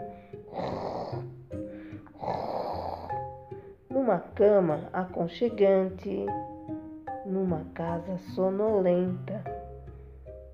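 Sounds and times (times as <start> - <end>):
voice imitating a grandmother snoring: 0.5 - 1.4, 2.1 - 3.4
speech: 4.1 - 6.5, 7.3 - 9.4.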